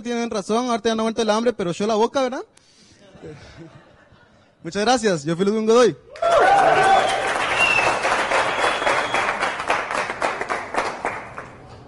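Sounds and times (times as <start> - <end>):
speech: 0.0 - 3.8, 4.6 - 6.9
laughter: 3.0 - 4.6
people cheering: 6.1 - 10.2
crowd applause: 6.2 - 11.6
crowd whistles: 6.9 - 9.5.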